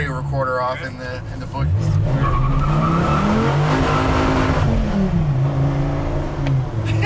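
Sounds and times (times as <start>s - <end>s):
car engine in sport mode roaring: 0.0s - 7.0s
speech: 0.2s - 4.0s
car tires skidding and squealing while spinning out into weeds: 1.6s - 5.4s.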